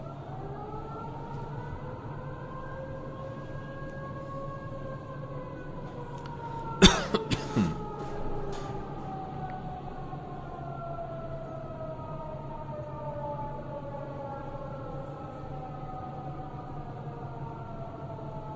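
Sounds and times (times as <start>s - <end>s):
civil defense emergency siren wailing: 0.0s - 18.5s
person coughing: 6.8s - 8.0s.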